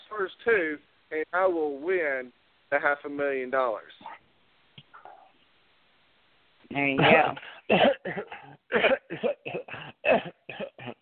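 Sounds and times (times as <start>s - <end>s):
speech: 0.2s - 4.1s, 6.7s - 10.4s
man coughing in a harsh fit: 7.0s - 10.9s.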